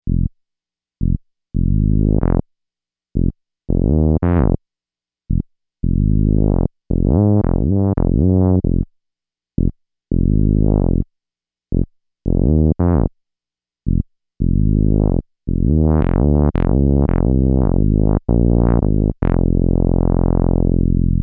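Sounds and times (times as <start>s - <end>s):
fat bass: 0.0s - 0.3s, 1.0s - 2.4s, 3.2s - 4.6s, 5.3s - 8.9s, 9.6s - 11.0s, 11.7s - 13.1s, 13.9s - 21.2s.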